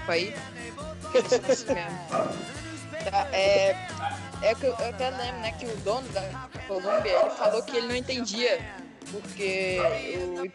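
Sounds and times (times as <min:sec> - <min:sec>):
speech: 0:00.1 - 0:10.5
dogs barking sharply: 0:02.1 - 0:02.6, 0:04.0 - 0:04.3, 0:06.8 - 0:08.0, 0:09.7 - 0:10.2
dog yelping: 0:06.9 - 0:08.0, 0:09.8 - 0:10.2.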